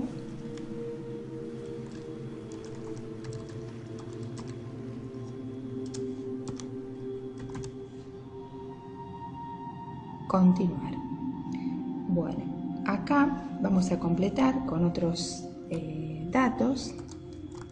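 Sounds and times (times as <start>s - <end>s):
steady low hum: 0.0s - 17.7s
typing on a computer keyboard: 1.8s - 6.7s, 7.4s - 7.8s, 16.9s - 17.7s
speech: 10.4s - 11.0s, 13.1s - 17.1s.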